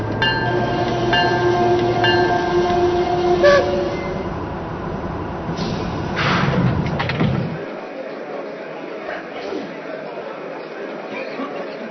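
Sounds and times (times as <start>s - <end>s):
passenger train arriving at station: 0.0s - 7.7s
passenger train brakes squealing: 0.2s - 4.4s
faint voices in station ambience: 7.5s - 11.9s.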